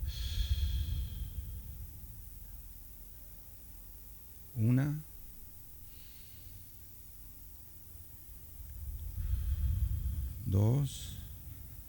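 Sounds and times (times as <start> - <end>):
breathing in through the nose and out through the mouth: 0.0 - 2.3, 5.8 - 7.1, 8.3 - 11.8
speech: 4.6 - 5.1, 10.6 - 11.2.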